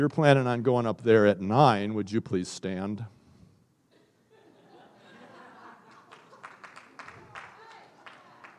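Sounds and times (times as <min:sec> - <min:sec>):
speech: 0:00.0 - 0:03.2
people chuckling: 0:03.9 - 0:06.6
room of people clapping: 0:05.8 - 0:08.5.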